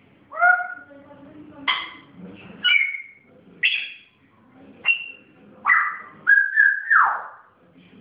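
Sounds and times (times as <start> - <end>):
pet grey parrot whistling clear tonal notes: 2.6 - 4.0, 4.8 - 7.4.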